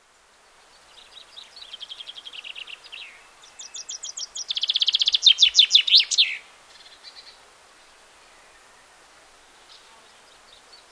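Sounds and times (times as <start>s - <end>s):
common chaffinch singing: 0.8s - 7.3s.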